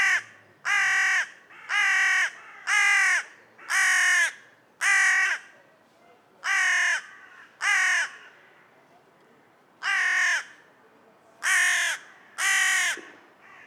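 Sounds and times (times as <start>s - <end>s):
carrion crow Corvus corone cawing: 0.0s - 5.5s, 6.4s - 8.4s, 9.8s - 10.6s, 11.4s - 13.6s.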